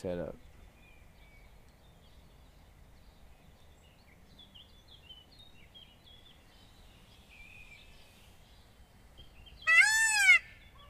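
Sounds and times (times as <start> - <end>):
speech: 0.0 - 0.5
drawn-out chicken call: 9.7 - 10.8.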